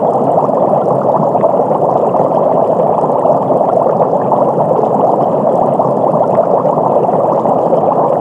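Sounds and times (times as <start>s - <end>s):
aquarium bubbles: 0.0s - 8.2s.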